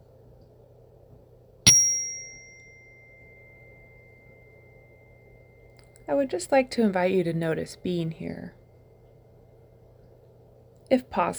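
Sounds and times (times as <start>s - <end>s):
meditation bell ringing: 1.7s - 5.8s
speech: 6.1s - 8.6s, 10.9s - 11.3s.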